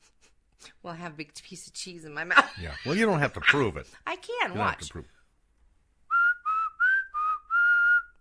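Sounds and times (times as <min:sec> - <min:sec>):
speech: 0:00.8 - 0:05.2
laughter: 0:02.4 - 0:03.8
person whistling short tonal notes: 0:06.1 - 0:08.1.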